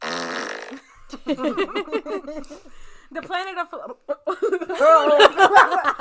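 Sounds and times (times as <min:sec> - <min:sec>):
loud buzzy fart noise: 0:00.0 - 0:01.0
speech: 0:00.7 - 0:05.9
laughter: 0:00.9 - 0:02.8, 0:03.8 - 0:05.9.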